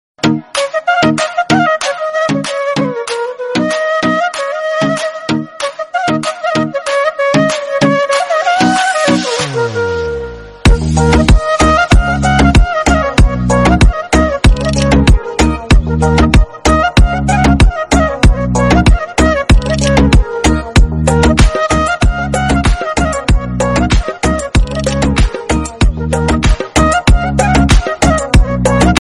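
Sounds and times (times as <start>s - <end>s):
flute background Bollywood song ringtone: 0.2s - 28.9s.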